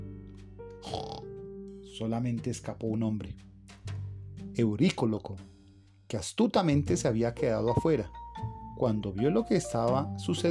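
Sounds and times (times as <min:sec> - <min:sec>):
pigs grunting and oinking: 0:00.8 - 0:01.3
speech: 0:02.0 - 0:03.5, 0:04.6 - 0:05.5, 0:06.1 - 0:08.2, 0:08.8 - 0:10.4.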